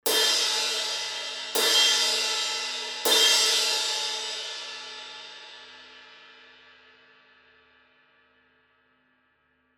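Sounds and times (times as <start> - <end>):
Zildjian heavy crash cymbal hits: 0.1 - 5.9.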